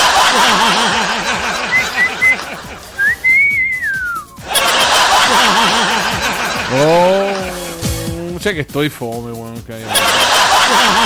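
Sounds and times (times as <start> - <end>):
chuckling and laughter: 0.0 - 8.3, 9.8 - 11.0
person whistling: 1.7 - 4.4
speech: 8.5 - 11.0.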